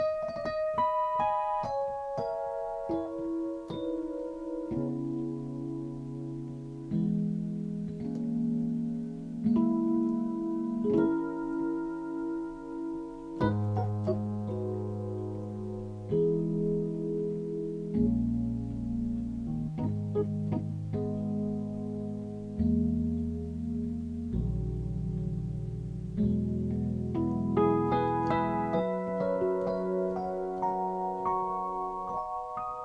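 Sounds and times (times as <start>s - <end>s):
Rhodes electric piano sketch: 0.0s - 32.8s.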